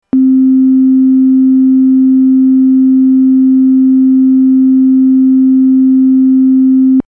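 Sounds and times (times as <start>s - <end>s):
MIDI synth sine tone: 0.1s - 7.0s.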